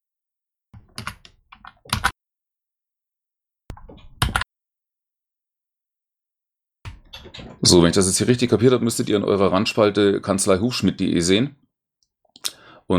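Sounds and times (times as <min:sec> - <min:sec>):
computer keyboard typing while copying a link: 0:00.8 - 0:02.1, 0:03.7 - 0:04.4
speech: 0:07.1 - 0:11.6.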